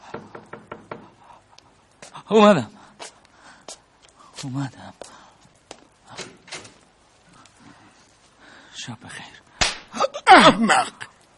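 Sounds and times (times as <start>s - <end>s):
sharp raps knocking on a door: 0.0s - 1.1s
speech: 2.3s - 2.8s, 4.4s - 5.1s, 8.8s - 9.4s, 10.4s - 11.0s.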